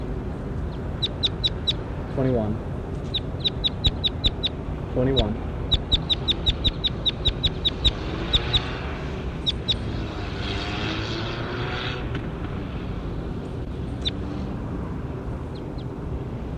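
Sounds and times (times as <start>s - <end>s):
propeller aircraft drone: 0.0s - 16.5s
bird chirping in the field: 0.6s - 2.2s, 2.9s - 8.8s, 9.4s - 10.0s, 13.9s - 14.2s
speech: 2.2s - 2.7s, 5.0s - 5.5s.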